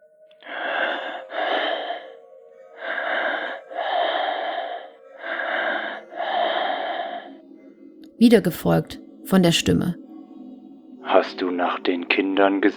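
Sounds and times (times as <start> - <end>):
heavy raspy breathing of a caller over a telephone line: 0.4 - 7.8
speech: 8.2 - 10.0, 11.2 - 12.7.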